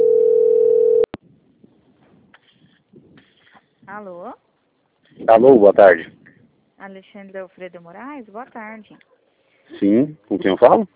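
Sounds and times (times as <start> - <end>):
steady single-pitch telephone tone during a call transfer: 0.0 - 1.1
speech: 3.9 - 4.5, 5.1 - 6.2, 6.8 - 9.1, 9.7 - 10.9.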